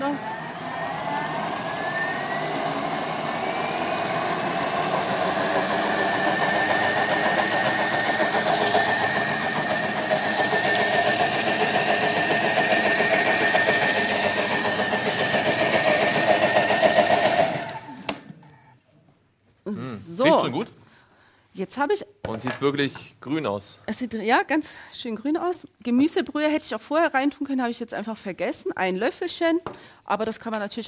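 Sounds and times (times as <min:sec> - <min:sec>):
blender mixing green vegetable soup: 0:00.0 - 0:18.4
speech: 0:21.8 - 0:30.8.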